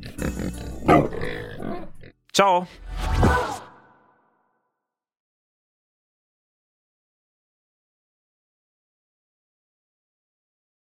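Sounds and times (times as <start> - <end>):
pig grunting and snorting: 0.0 - 2.2
speech: 2.4 - 3.6.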